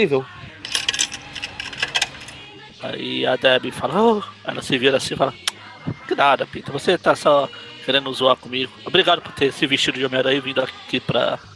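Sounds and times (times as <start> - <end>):
speech: 0.0 - 0.4, 2.8 - 11.5
tokens dropping and clattering: 0.6 - 2.6.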